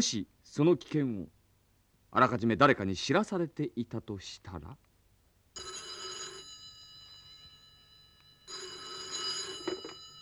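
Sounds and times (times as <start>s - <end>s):
speech: 0.0s - 1.4s, 2.1s - 4.9s
telephone bell ringing: 5.6s - 10.2s.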